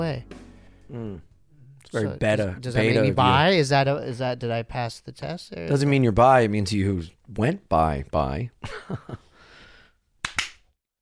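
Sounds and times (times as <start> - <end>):
speech: 0.1 - 1.3, 1.9 - 9.2
hand claps: 10.2 - 10.6.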